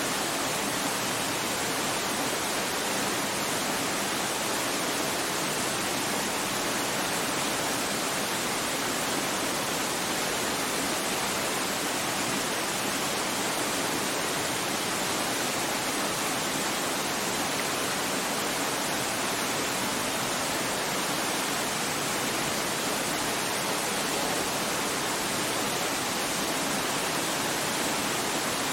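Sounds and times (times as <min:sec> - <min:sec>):
waterfall cascading down rocks: 0:00.0 - 0:28.7.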